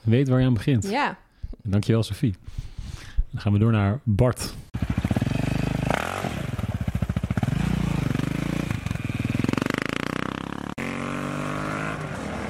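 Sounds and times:
speech: 0.0 - 2.7, 3.3 - 4.6
motorcycle engine revving: 4.7 - 12.4.

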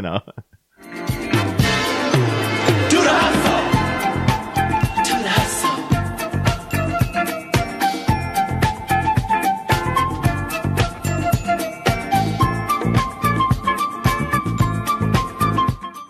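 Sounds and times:
speech: 0.0 - 1.2
1970s disco instrumental with strings, horns and four-on-the-floor beat: 0.8 - 16.0.

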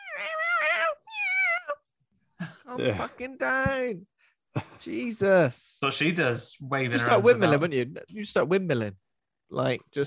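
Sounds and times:
bird screeching from a film: 0.0 - 1.8
speech: 2.8 - 10.0.

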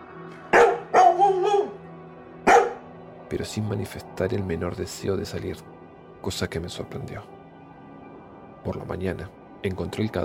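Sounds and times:
labrador barking violently: 0.6 - 1.8, 2.5 - 2.8
speech: 3.3 - 7.4, 8.6 - 10.2.

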